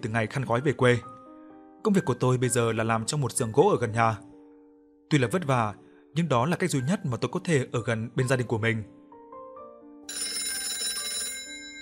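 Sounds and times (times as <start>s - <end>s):
speech: 0.0s - 1.1s, 1.8s - 4.3s, 5.1s - 9.0s
telephone ringing in a wood workshop: 10.1s - 11.8s.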